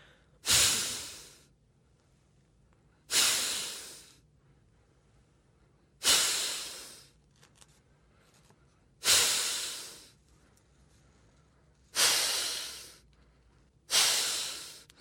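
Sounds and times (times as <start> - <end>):
forceful hissing kapalbhati yoga exhalations seated in a car: 0.4 - 1.5, 3.1 - 4.2, 6.0 - 7.1, 9.0 - 10.2, 11.9 - 13.1, 13.9 - 15.0.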